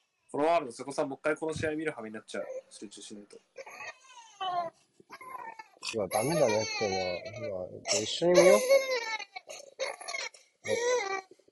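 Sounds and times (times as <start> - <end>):
speech: 0.3 - 3.7, 5.8 - 9.0
whimpers: 3.6 - 11.2
person crying loudly: 6.1 - 8.8.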